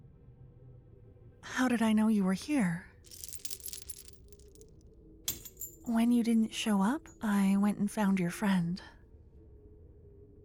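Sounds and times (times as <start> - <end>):
speech: 1.5 - 2.9, 5.9 - 9.0
set of keys jingling and clinking: 3.1 - 4.6, 5.3 - 6.2.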